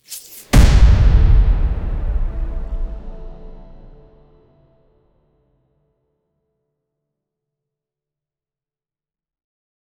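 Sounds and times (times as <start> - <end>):
orchestral theatre theme music: 0.6 - 4.8.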